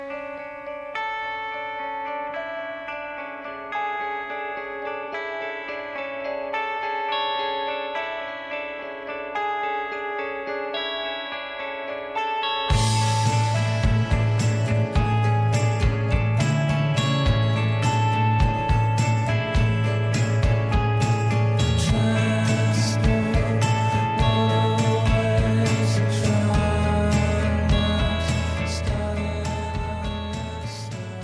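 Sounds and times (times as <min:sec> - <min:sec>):
guitar arpeggio in five beats: 0:00.0 - 0:31.2
bass: 0:12.7 - 0:31.2
drums: 0:12.7 - 0:31.2.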